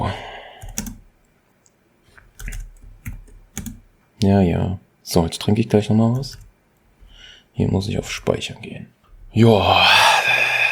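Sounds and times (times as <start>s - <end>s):
computer keyboard keys clicking for cut and paste shortcuts: 0.6s - 1.1s, 2.3s - 3.8s, 6.2s - 6.5s
speech: 4.2s - 6.4s, 7.6s - 10.0s.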